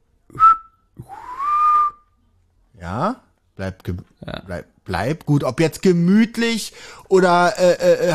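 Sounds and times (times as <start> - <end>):
person whistling imitating a bird call: 0.3 - 2.1
speech: 2.9 - 8.1.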